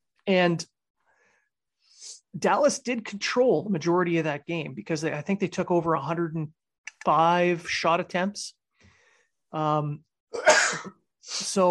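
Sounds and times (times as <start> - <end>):
speech: 0.3 - 0.7, 2.3 - 8.6, 9.5 - 11.6
person sneezing: 10.4 - 11.4.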